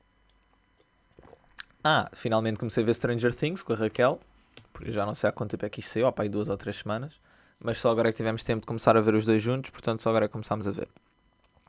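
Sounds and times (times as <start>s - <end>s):
faint hiss: 0.0s - 11.6s
person drinking water with a soft wet gulp: 1.1s - 1.8s
sharp little mouth click: 1.6s - 1.8s
speech: 1.8s - 11.0s.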